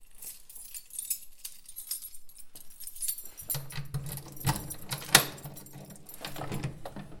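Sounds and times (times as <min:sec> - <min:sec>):
door opening with a metallic key: 0:01.6 - 0:07.1.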